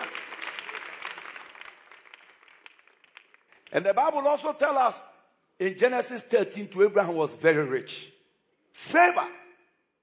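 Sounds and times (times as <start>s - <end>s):
audience clapping: 0.0s - 4.3s
speech: 3.7s - 8.1s, 8.8s - 9.4s.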